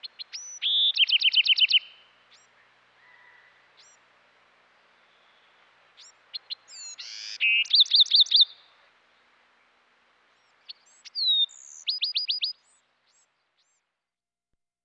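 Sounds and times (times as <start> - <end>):
Bewick's wren song: 0.0 - 4.1, 4.7 - 13.9.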